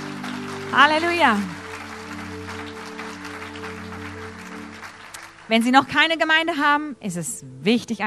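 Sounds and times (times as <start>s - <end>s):
held low organ-like tone: 0.0s - 5.2s
audience applause: 0.0s - 6.1s
speech: 0.7s - 1.6s, 5.5s - 8.0s.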